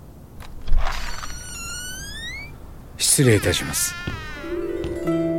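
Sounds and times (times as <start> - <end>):
reception room door squeaking: 0.6 - 5.2
speech: 3.1 - 4.2
reception room door thump: 4.0 - 5.1.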